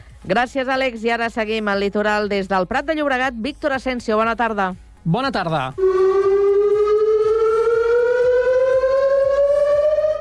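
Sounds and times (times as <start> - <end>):
speech: 0.2 - 6.0
civil defense chemical risk warning siren wailing during a drill in El Prat de Llobregat: 5.8 - 10.2.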